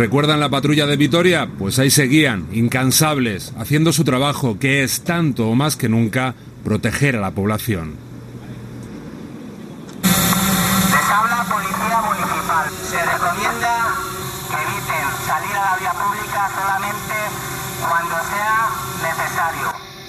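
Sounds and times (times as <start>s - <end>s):
speech: 0.0s - 8.1s
loudspeaker voice making a public announcement from a police drone: 10.0s - 19.8s
police drone hovering with engine drone: 10.0s - 20.0s.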